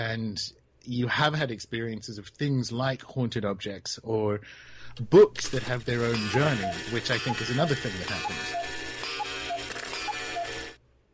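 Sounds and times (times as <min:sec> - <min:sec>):
speech: 0:00.2 - 0:08.8
dense mechanical whirr: 0:05.3 - 0:10.8
cuckoo clock cuckoo calls: 0:05.4 - 0:10.8.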